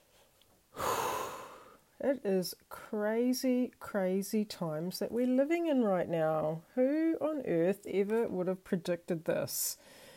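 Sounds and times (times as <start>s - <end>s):
deep breath drawn in: 0.7s - 1.8s, 9.8s - 10.1s
speech: 2.0s - 10.0s.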